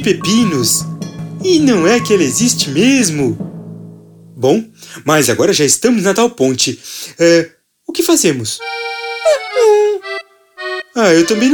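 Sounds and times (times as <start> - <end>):
speech: 0.0 - 3.5, 4.4 - 10.1, 11.0 - 11.5
dog yelping: 9.3 - 10.0.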